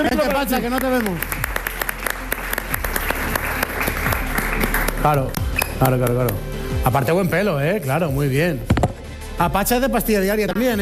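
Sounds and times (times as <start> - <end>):
speech: 0.0 - 1.4, 5.0 - 8.7, 9.4 - 10.8
audience clapping: 0.0 - 6.4.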